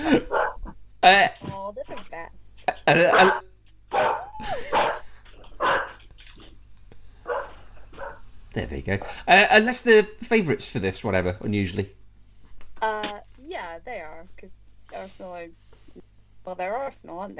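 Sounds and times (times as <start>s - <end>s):
dog barking: 0.1s - 0.7s, 3.0s - 5.1s, 5.6s - 6.0s, 7.3s - 8.2s
speech: 2.9s - 3.4s, 8.9s - 12.0s, 13.9s - 15.7s, 16.5s - 17.3s.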